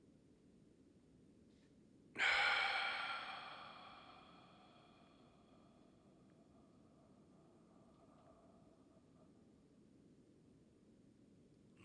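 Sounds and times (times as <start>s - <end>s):
long deep breath drawn in: 2.2s - 5.8s.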